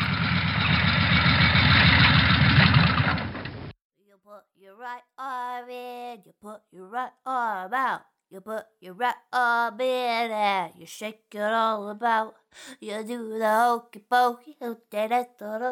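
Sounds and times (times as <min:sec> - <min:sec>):
motorbike engine idling with a rough chugging rumble: 0:00.0 - 0:03.7
speech: 0:04.8 - 0:15.7.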